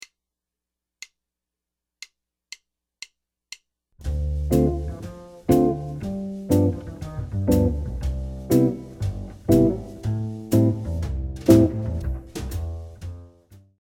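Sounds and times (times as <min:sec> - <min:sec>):
jazz chord progression: 0:04.0 - 0:13.4.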